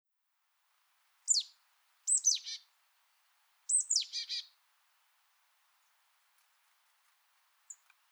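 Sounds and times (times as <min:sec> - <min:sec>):
marsh tit Poecile palustris calls: 0:01.3 - 0:01.5, 0:02.1 - 0:02.6, 0:03.7 - 0:04.5.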